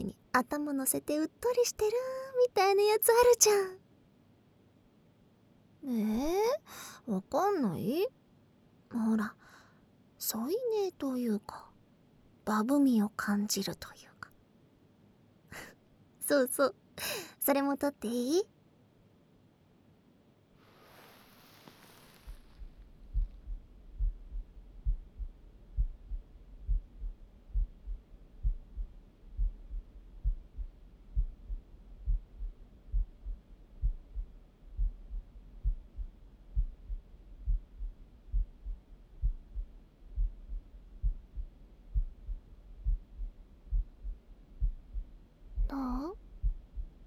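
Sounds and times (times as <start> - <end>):
speech: 0.0 - 3.8, 5.8 - 8.2, 8.9 - 9.4, 10.2 - 11.6, 12.5 - 14.1, 16.3 - 18.5
faint hum: 0.0 - 47.0
rustle: 20.5 - 23.1
close human heartbeat in double-beat rhythm: 22.3 - 47.0.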